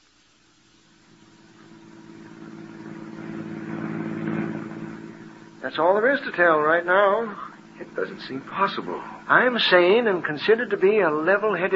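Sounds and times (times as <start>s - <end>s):
car engine humming as the vehicle drives: 1.6s - 5.7s
speech: 5.6s - 11.7s.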